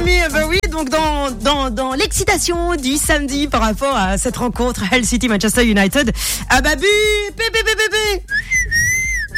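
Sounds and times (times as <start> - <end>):
speech: 0.2 - 8.6
voice imitating a referee's whistle: 8.2 - 9.3.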